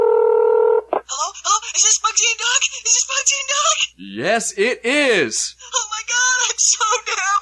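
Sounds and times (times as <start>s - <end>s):
electronic telephone ring tone through the line: 0.0s - 0.8s
speech: 3.3s - 7.3s.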